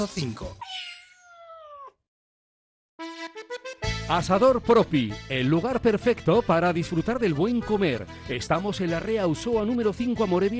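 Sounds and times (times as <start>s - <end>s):
speech: 0.0s - 0.6s, 4.1s - 10.5s
cat meowing: 0.6s - 2.0s.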